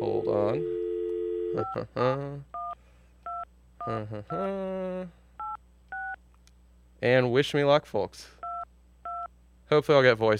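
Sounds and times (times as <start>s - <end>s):
sustained telephone tones: 0.0s - 1.8s
speech: 0.4s - 0.8s, 1.5s - 2.5s, 3.9s - 5.2s, 7.0s - 8.4s, 9.7s - 10.3s.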